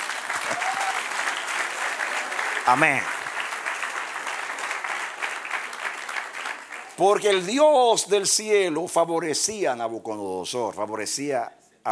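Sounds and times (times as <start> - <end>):
audience applauding during a sermon: 0.0 - 7.3
speech: 2.6 - 3.2, 7.0 - 11.9.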